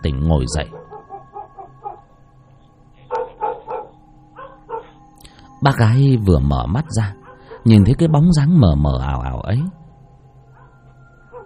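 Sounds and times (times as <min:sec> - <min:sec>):
speech: 0:00.2 - 0:00.8, 0:05.6 - 0:09.8
neighbour's dog barking loudly: 0:00.7 - 0:02.1, 0:03.1 - 0:05.0, 0:07.2 - 0:07.7.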